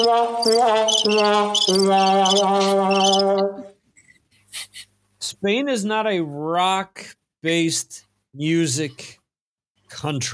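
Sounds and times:
crickets chirping: 0.0 - 3.6
speech: 0.0 - 3.6, 4.6 - 9.2, 9.9 - 10.3.

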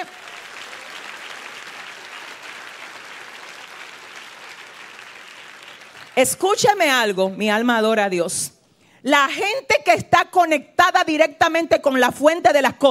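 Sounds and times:
audience applauding with many hands clapping: 0.0 - 6.4
speech: 6.2 - 12.9.

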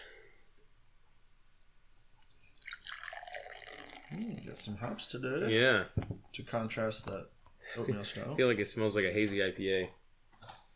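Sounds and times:
beer pouring gently into a glass, fizzing and foaming: 2.2 - 4.7
speech: 4.2 - 10.0.

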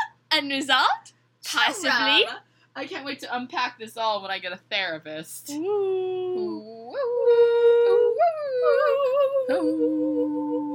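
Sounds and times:
speech: 0.4 - 6.2, 8.6 - 10.4
girls imitating wolf howls: 6.0 - 10.7.

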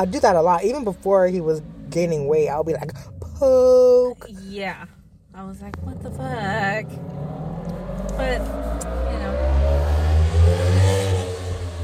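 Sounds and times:
speech: 0.0 - 7.3, 8.2 - 9.4
small scooter engine revving past: 6.0 - 11.8.

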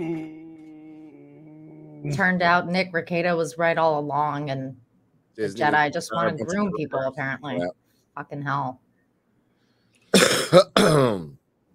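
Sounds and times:
rough voiced coughing hack: 0.0 - 2.2, 10.1 - 11.4
speech: 2.0 - 4.8, 5.4 - 8.8, 10.5 - 11.4
gravelly throat clearing: 10.2 - 11.4.

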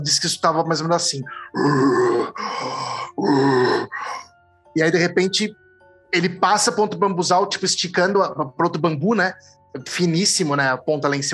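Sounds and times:
speech: 0.0 - 4.2, 4.8 - 11.3
person imitating the strong growl of a creature: 1.5 - 4.2.

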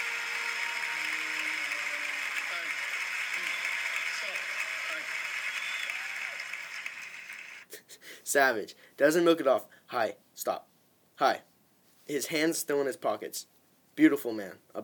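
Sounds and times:
crowd applauding in a played recording: 0.0 - 7.7
speech: 8.3 - 11.5, 12.1 - 14.8.

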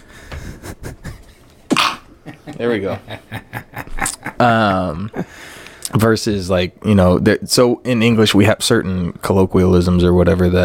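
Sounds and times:
breathy hitching inhales before a sneeze: 0.0 - 0.8, 5.2 - 5.9
laughter: 0.3 - 5.3
speech: 2.6 - 3.8, 4.4 - 10.6.

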